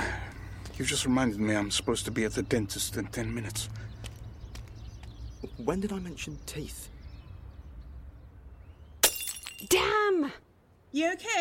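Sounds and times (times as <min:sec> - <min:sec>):
speech: 0:00.8 - 0:03.9, 0:05.5 - 0:06.9, 0:09.6 - 0:11.3
ringing glass shards and tinkling fragments: 0:09.0 - 0:09.8
glass bottle breaking and shattering: 0:09.0 - 0:09.9.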